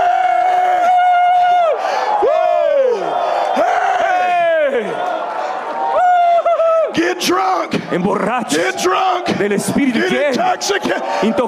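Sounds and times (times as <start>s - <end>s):
large crowd shouting and cheering: 0.0s - 11.4s
speech: 7.2s - 11.4s.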